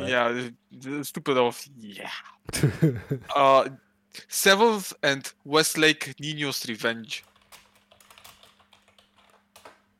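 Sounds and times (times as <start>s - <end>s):
faint steady hum: 0.0s - 9.9s
speech: 0.1s - 7.3s
typing on a computer keyboard: 7.2s - 9.9s.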